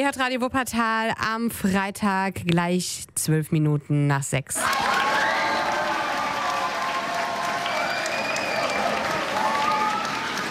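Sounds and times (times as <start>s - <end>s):
speech: 0.0s - 5.1s
crowd applauding at a secondary-school book reading: 4.6s - 10.4s.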